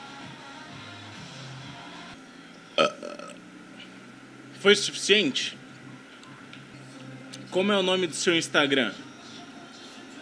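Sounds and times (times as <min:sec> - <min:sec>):
burp: 0:02.8 - 0:03.4
speech: 0:04.6 - 0:05.6, 0:07.6 - 0:09.1.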